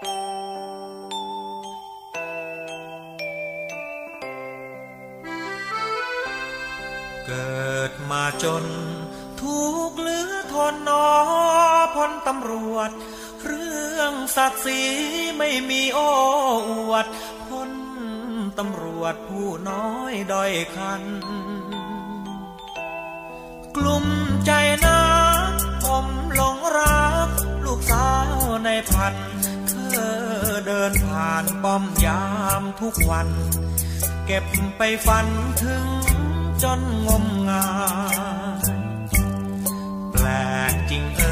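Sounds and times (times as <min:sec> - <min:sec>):
bright chiming bell-like notes: 0:00.0 - 0:10.7, 0:14.6 - 0:41.3
song with full instrumentation and possible vocal: 0:00.0 - 0:41.3
speech: 0:07.3 - 0:17.3, 0:18.6 - 0:21.6, 0:30.0 - 0:33.7, 0:34.3 - 0:38.4.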